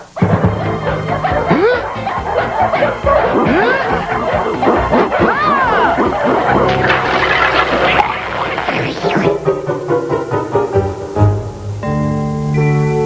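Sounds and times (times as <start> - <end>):
many dogs barking and yipping: 0.0 - 10.6
steady tonal sounds: 0.0 - 12.4
laughter: 0.4 - 10.8.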